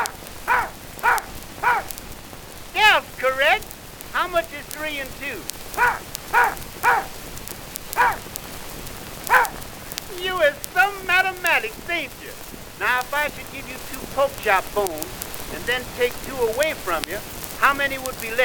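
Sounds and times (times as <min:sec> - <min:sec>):
dog barking on command: 0:00.0 - 0:02.0, 0:05.7 - 0:07.2, 0:07.9 - 0:08.4, 0:09.2 - 0:09.7
faint hiss: 0:00.0 - 0:18.4
speech: 0:04.8 - 0:06.1, 0:11.6 - 0:18.4.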